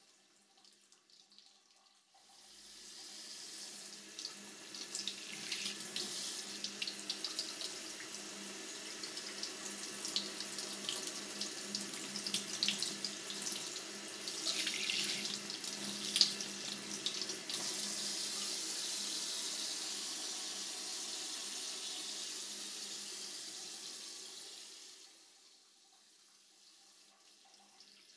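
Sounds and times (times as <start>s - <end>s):
warm water running over the left ear: 2.2s - 23.1s.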